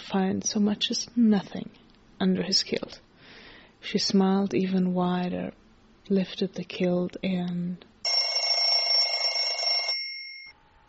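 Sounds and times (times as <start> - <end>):
speech: 0.1 - 3.0, 3.8 - 7.9
phone ringing with a buzzy electronic tone: 8.0 - 10.6.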